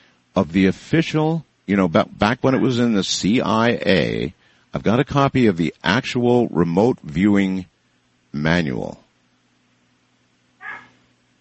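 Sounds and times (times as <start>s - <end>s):
low hum: 0.0s - 11.3s
speech: 0.4s - 7.7s, 8.4s - 9.0s
dog barking at a raccoon at the door: 2.5s - 2.9s, 10.6s - 11.0s.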